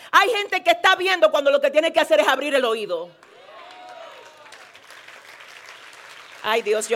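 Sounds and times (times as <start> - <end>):
speech: 0.2 - 3.2, 6.4 - 6.9
audience applause with many hands clapping: 3.2 - 6.9.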